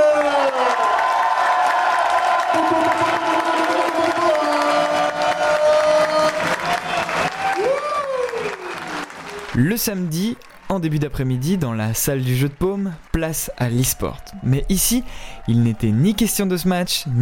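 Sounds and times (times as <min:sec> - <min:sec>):
crowd cheering with whoops and raised voices: 0:00.0 - 0:09.6, 0:13.2 - 0:17.2
crowd clapping: 0:00.0 - 0:16.8
speech: 0:09.6 - 0:17.2.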